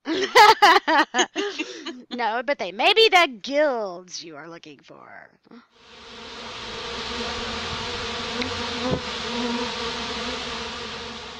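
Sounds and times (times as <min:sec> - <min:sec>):
laughter: 0:00.0 - 0:02.2
speech: 0:02.4 - 0:10.8
bee buzzing: 0:05.8 - 0:11.3.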